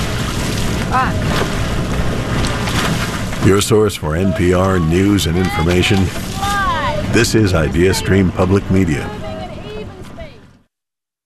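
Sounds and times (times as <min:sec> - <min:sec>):
sculling oar blades pulling through river water: 0:00.0 - 0:03.5, 0:05.4 - 0:07.0
rushing water on a river: 0:00.0 - 0:10.1
speech: 0:00.9 - 0:02.1, 0:03.4 - 0:06.4, 0:07.1 - 0:09.2.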